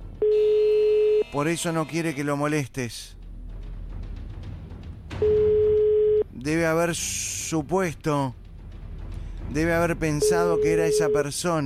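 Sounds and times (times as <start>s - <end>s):
steady electronic phone tone: 0.2s - 1.4s, 5.2s - 6.2s, 10.2s - 11.3s
speech: 1.3s - 3.2s, 6.4s - 8.4s, 9.5s - 11.6s.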